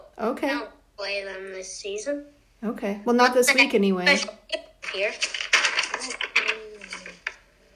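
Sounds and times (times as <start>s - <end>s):
speech: 0.3s - 4.4s, 4.9s - 5.4s
papers rustling and being shuffled: 4.8s - 7.7s
sharp paper handling clicks: 4.9s - 7.5s.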